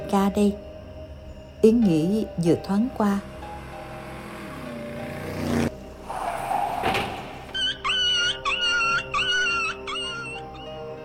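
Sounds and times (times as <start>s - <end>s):
speech: 0.1s - 0.7s, 1.6s - 3.3s
low rumble of a vehicle braking hard: 3.2s - 7.8s
dog howling: 6.1s - 10.7s.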